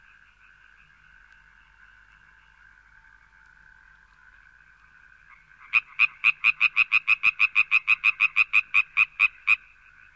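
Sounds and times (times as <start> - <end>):
faint continuous drone: 0.0 - 5.9
frog giving rapid loud croaks: 0.0 - 10.1.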